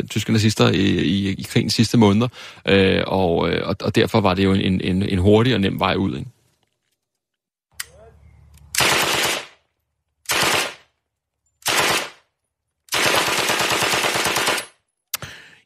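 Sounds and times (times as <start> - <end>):
speech: 0.0 - 6.4
British Sten submachine gun firing automatic bursts: 8.8 - 9.6, 10.3 - 10.9, 11.6 - 12.2, 12.9 - 14.8.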